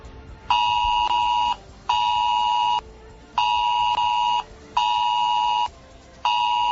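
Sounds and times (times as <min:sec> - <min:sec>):
mobile phone test emergency alert tone bursts in Garachico on Tenerife: 0:00.5 - 0:02.8, 0:03.4 - 0:05.7, 0:06.3 - 0:06.6.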